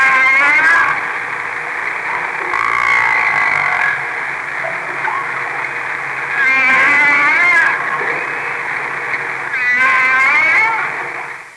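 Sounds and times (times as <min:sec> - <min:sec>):
hissing background noise: 0:00.0 - 0:11.5
humpback whale song units: 0:02.4 - 0:04.0, 0:06.4 - 0:07.8, 0:09.6 - 0:10.9.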